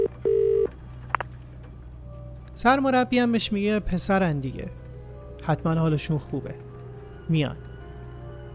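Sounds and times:
steady telephone beep at a single pitch: 0.0 - 0.7
telephone line tone: 0.0 - 0.8
speech: 2.6 - 4.8, 5.4 - 6.6, 7.3 - 7.6.

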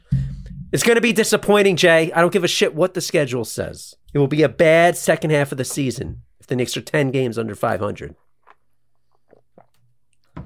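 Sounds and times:
speech: 0.7 - 8.2
person sipping a drink with wet mouth noises: 8.4 - 10.3
person gulping a drink: 8.4 - 10.4.

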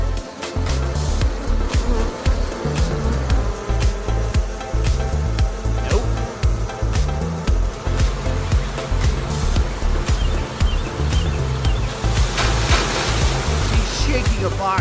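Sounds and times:
bees ticking and bumping against surfaces: 0.0 - 14.7
dense swarm of bees buzzing at a family home: 0.0 - 14.7.

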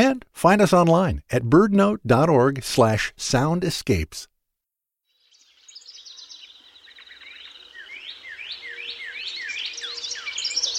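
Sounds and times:
speech: 0.0 - 4.3
birdsong: 5.1 - 10.7.

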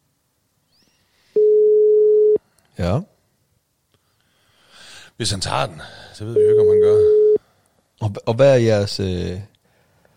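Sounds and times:
telephone ringing tone on an outgoing call: 1.4 - 2.4, 6.4 - 7.4
speech: 2.8 - 3.1, 5.2 - 7.0, 8.0 - 9.5.

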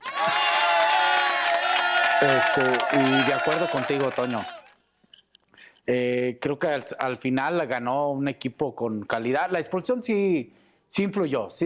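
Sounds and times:
crowd applause: 0.0 - 4.8
crowd cheering with whoops and shouts: 0.0 - 4.8
speech: 2.2 - 4.6, 5.9 - 11.6.

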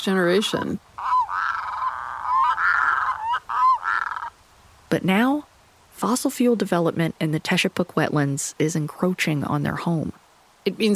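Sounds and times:
speech: 0.0 - 0.9, 4.9 - 10.9
Red-throated Loon harsh goose-like honking on a small pond in northern Alaska: 1.0 - 4.4.

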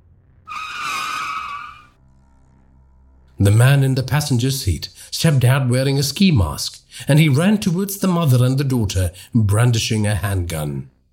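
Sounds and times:
grey car tires squealing as the car brakes hard: 0.5 - 2.0
speech: 3.4 - 10.9.

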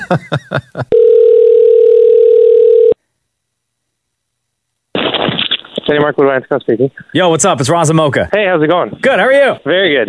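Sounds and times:
speech: 0.1 - 1.4, 5.9 - 10.0
phone dialing beeps for a long phone number: 0.9 - 3.0.

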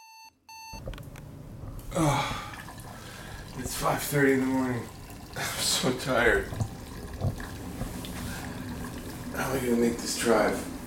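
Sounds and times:
electronic alarm clock giving piercing beeps: 0.0 - 0.8
speech: 1.9 - 2.5, 3.6 - 6.7, 9.4 - 10.7.

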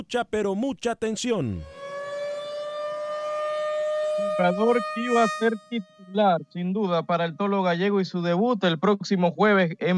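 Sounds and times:
speech: 0.1 - 1.8, 4.2 - 9.9
steady sustained alert siren with piercing tone: 1.3 - 8.6.

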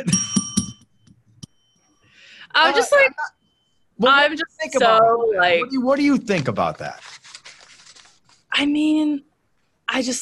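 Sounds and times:
speech: 0.0 - 0.3, 2.5 - 3.4, 4.0 - 7.1, 8.6 - 9.3, 9.9 - 10.2
bright ringing bell being struck: 0.0 - 3.8.

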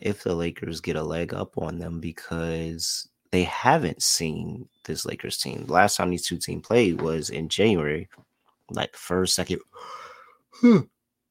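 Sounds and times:
speech: 0.0 - 10.0, 10.6 - 10.9
faint breathy exhale: 9.7 - 10.7
stifled involuntary yawn: 9.8 - 10.9.

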